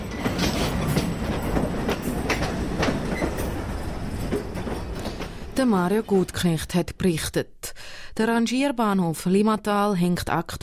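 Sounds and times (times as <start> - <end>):
freight train wheels clicking over rail joints: 0.0 - 5.5
freight train rolling on rails at a marshalling yard in Switzerland: 0.0 - 6.4
speech: 5.6 - 10.6.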